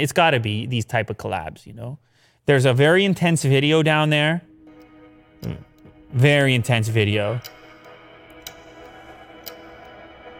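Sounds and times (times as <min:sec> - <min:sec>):
speech: 0:00.0 - 0:04.5, 0:05.4 - 0:07.6
clock ticking: 0:04.8 - 0:10.3.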